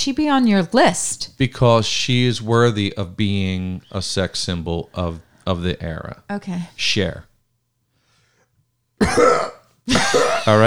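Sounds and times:
speech: 0.0 - 7.3, 9.0 - 10.6
gruff throat clearing: 9.0 - 10.5.

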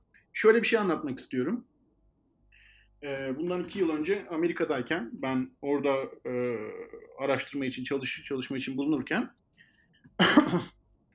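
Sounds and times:
speech: 0.4 - 1.7, 3.0 - 9.4, 10.1 - 10.8
harsh rough cough: 10.2 - 10.7.

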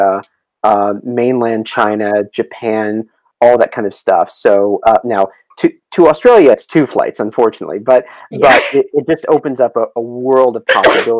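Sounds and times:
speech: 0.2 - 11.1
person sneezing: 8.1 - 8.8, 10.7 - 11.1.

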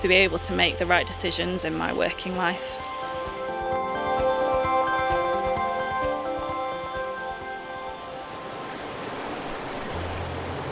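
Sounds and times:
speech: 0.0 - 3.0
tonal music: 0.0 - 10.6
River Ribble rushing water at Mitton: 4.8 - 10.6.

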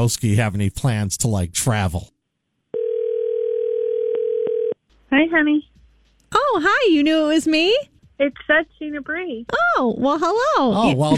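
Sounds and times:
speech: 0.0 - 2.2, 5.1 - 5.7, 6.3 - 11.1
telephone dial tone while placing a call to a relative: 2.8 - 4.8.

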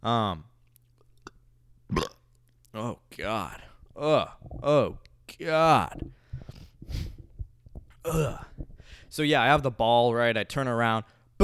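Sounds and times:
speech: 0.0 - 0.5, 2.8 - 6.2, 8.0 - 8.5, 9.1 - 11.4
burp: 1.9 - 2.3, 8.0 - 8.6.

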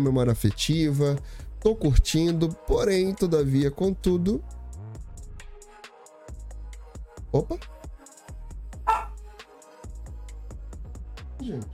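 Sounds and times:
speech: 0.0 - 4.6, 7.3 - 7.8, 11.4 - 11.7
dog barking: 8.9 - 9.2.

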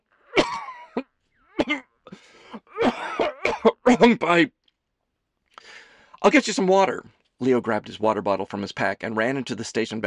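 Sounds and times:
person coughing uncontrollably after choking on pizza: 0.3 - 4.2
speech: 3.6 - 4.6, 6.2 - 10.0.

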